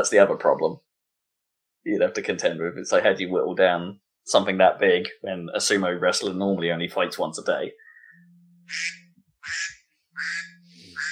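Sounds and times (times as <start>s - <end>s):
speech: 0.0s - 0.9s, 1.8s - 10.5s
nasal raspy duck quacks: 8.7s - 11.1s.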